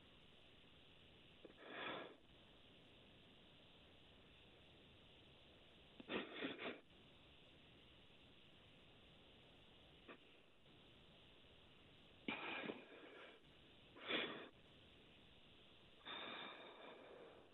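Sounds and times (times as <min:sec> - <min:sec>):
slow heavy breaths: 0:01.4 - 0:02.2, 0:12.3 - 0:14.6, 0:16.0 - 0:17.5.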